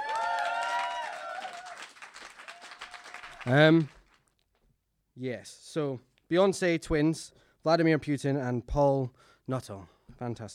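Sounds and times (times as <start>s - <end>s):
audience cheering: 0.0s - 3.8s
audience applause: 0.0s - 4.2s
speech: 3.4s - 4.0s, 5.2s - 10.5s.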